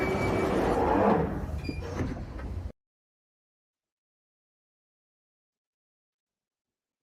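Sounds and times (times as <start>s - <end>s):
underground train door sliding: 0.2s - 2.7s.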